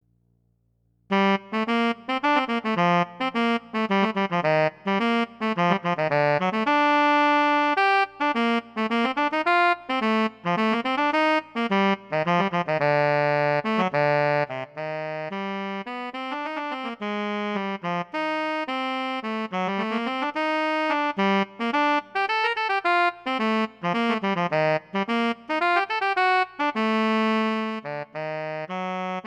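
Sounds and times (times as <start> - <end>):
tenor saxophone playing technically: 1.1 - 29.2.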